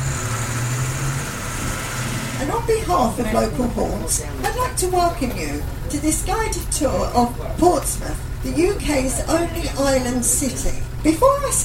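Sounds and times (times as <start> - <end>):
old double-decker sightseeing bus engine idling in Portsmouth: 0.0 - 11.6
speech: 2.4 - 11.6.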